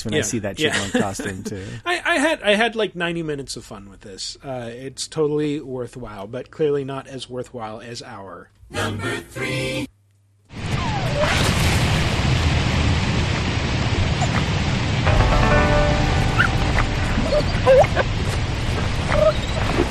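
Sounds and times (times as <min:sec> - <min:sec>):
speech: 0:00.0 - 0:09.9
steady rumbling noise: 0:10.5 - 0:19.8
video game badgers yelping, squealing and chattering: 0:17.1 - 0:18.1, 0:19.0 - 0:19.8.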